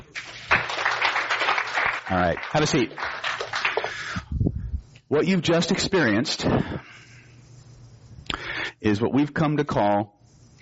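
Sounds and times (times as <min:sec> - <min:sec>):
audience applause: 0:00.1 - 0:04.2
speech: 0:02.1 - 0:03.2, 0:05.1 - 0:07.0, 0:08.8 - 0:10.2.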